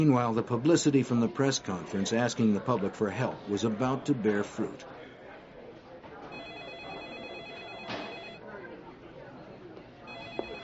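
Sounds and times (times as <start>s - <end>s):
speech: 0.0s - 4.9s
telephone ringing with electronic trill at a task force headquarters: 6.3s - 8.4s, 10.1s - 10.6s.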